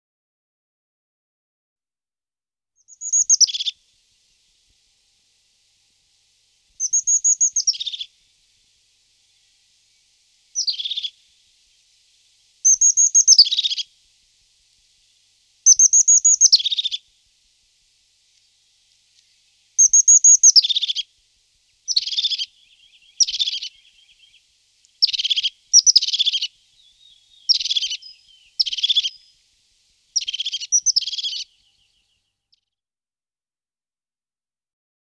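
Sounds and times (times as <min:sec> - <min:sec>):
crested tit singing: 0:02.8 - 0:03.8, 0:06.8 - 0:08.2, 0:09.2 - 0:14.0, 0:15.1 - 0:17.1, 0:18.4 - 0:29.4, 0:30.2 - 0:32.1.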